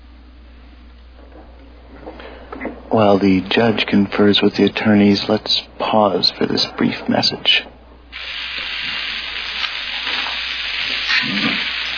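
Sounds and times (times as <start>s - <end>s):
speech: 1.4s - 7.7s
food frying in hot oil: 8.1s - 11.9s.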